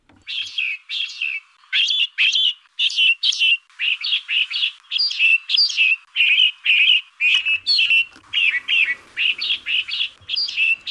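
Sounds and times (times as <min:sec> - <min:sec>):
male finch songs: 0:00.0 - 0:10.8.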